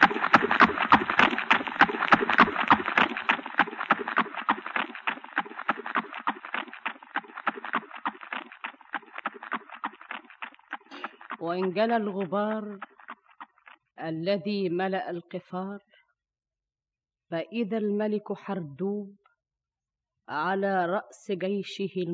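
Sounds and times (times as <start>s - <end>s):
galloping hooves of horses ridden by approaching horsemen: 0.0s - 14.2s
speech: 11.4s - 12.9s, 14.0s - 15.9s, 17.3s - 19.2s, 20.3s - 22.1s.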